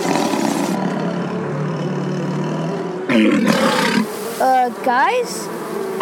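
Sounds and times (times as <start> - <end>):
giant monster creature roaring: 0.0 - 4.0
speech: 3.2 - 3.5, 4.4 - 5.6.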